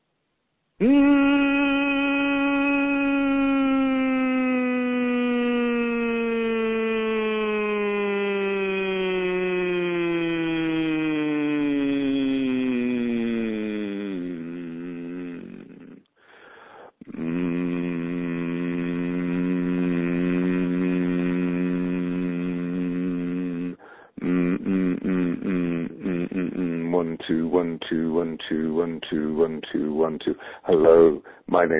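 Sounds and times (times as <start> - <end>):
person humming a sustained note gliding down in pitch in the evening: 0.8 - 16.0, 17.0 - 27.2
speech: 27.9 - 31.7.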